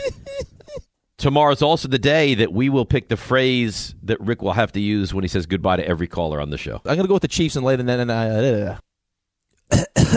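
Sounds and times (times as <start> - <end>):
speech: 0.1 - 0.4, 1.2 - 8.9, 9.7 - 10.1
thick chesty cough: 9.7 - 10.1.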